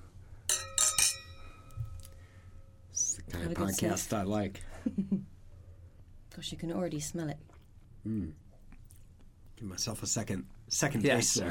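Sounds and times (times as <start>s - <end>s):
wine glasses clinking in a toast during a wine tasting: 0.5s - 2.2s
speech: 3.4s - 5.4s, 6.4s - 8.4s, 9.6s - 11.4s.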